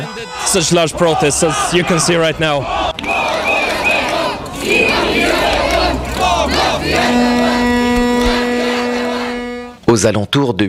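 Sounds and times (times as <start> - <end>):
large protest crowd chanting a slogan in unison: 0.0 - 9.8
steady horn-like tone: 0.0 - 10.1
speech: 0.2 - 3.0, 9.9 - 10.6
whistles: 2.9 - 5.6.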